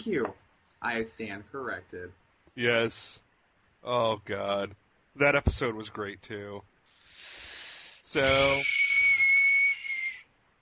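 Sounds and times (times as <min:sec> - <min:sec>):
speech: 0:00.0 - 0:07.4, 0:08.0 - 0:08.8
piercing whistle: 0:08.2 - 0:10.3.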